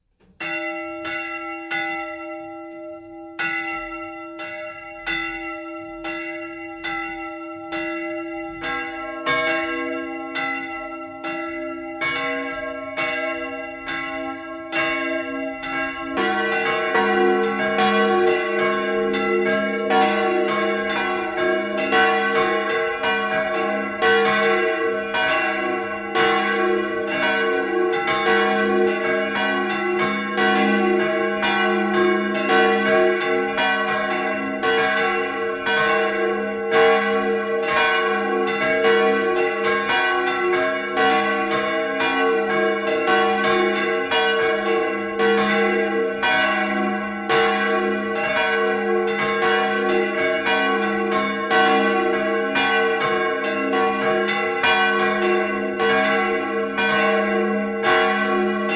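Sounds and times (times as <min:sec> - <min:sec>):
bells of a lake chapel ringing: 0:00.3 - 0:58.7.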